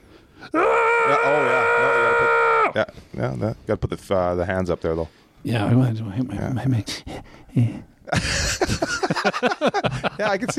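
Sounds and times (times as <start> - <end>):
voice imitating a boy's high-pitched scream: 0.5 - 2.8
speech: 2.8 - 10.5
laughter: 8.1 - 10.5.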